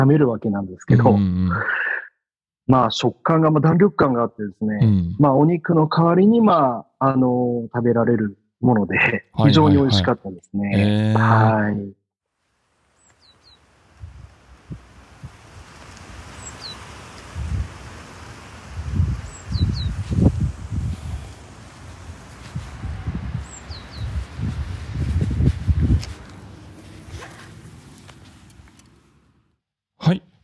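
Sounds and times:
speech: 0.0 - 1.9, 2.7 - 12.0
rustling: 12.5 - 29.5
faint bird calls at Ryutan pond near Shuri Castle: 12.9 - 29.2
low rumbling thumps: 18.7 - 29.1.

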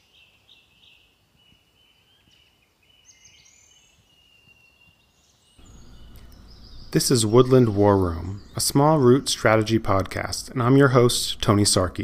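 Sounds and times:
quiet hissy outdoor background: 0.0 - 12.0
soft birdsong of thin high whistles and short chirps: 0.0 - 12.0
low rumble: 5.6 - 12.0
speech: 6.9 - 12.0.

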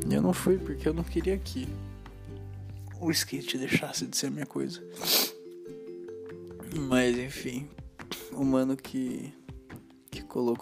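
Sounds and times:
speech: 0.0 - 1.9, 3.0 - 5.3, 6.8 - 9.4, 10.3 - 10.6
sharp breathy nasal sniff from a person with rhinitis: 4.9 - 5.5.

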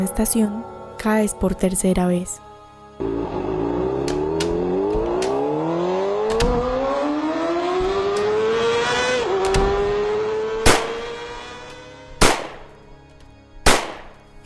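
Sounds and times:
speech: 0.2 - 3.1
car engine revving: 3.0 - 14.2
gunshots hitting a house facade: 10.6 - 11.0, 12.2 - 12.7, 13.7 - 14.1.

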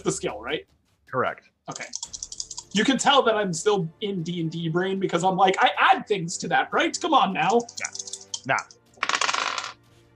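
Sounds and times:
speech: 0.0 - 8.8
dice rattling across a hard tabletop: 7.6 - 8.4, 9.0 - 9.8.

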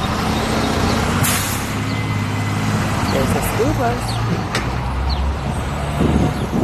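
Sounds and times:
city street traffic: 0.0 - 6.6
school bus engine drone passing on a city street: 0.0 - 6.6
school bus air brakes hissing: 1.2 - 1.8
speech: 3.6 - 4.4.

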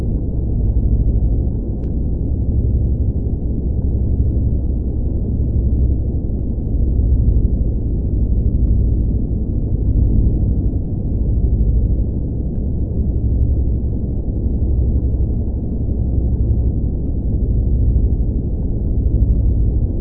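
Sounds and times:
low hum: 0.0 - 20.0
spaceship engine drone: 0.0 - 20.0
faint tick: 8.6 - 8.8.

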